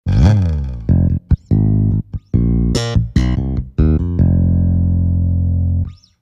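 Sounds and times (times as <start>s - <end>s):
Tyros Mega Finger Bass: 0.0s - 6.2s.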